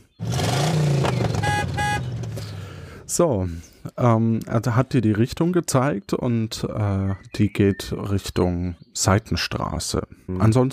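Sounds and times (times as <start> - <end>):
car engine starting and revving: 0.1 - 3.0
short car horn toots: 1.1 - 2.6
speech: 3.2 - 10.7.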